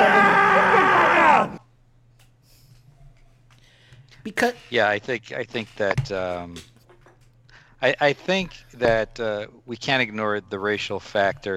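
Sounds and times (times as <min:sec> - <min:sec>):
person screaming in frustration: 0:00.0 - 0:01.6
speech: 0:04.3 - 0:06.7, 0:07.8 - 0:11.5.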